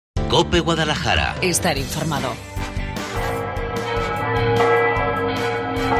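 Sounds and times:
speech: 0:00.3 - 0:03.4
large church bells pealing: 0:03.2 - 0:05.9.

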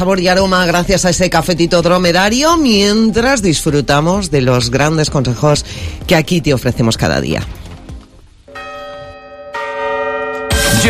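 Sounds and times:
speech: 0:00.0 - 0:07.6
twelve New Year's Eve midnight bell chimes ringing: 0:08.5 - 0:10.8.

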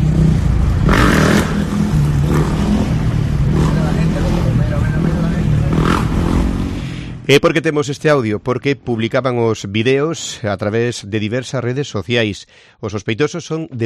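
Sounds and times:
motorcycle engines revving during reckless stunts: 0:00.0 - 0:07.3
speech: 0:07.3 - 0:13.8.

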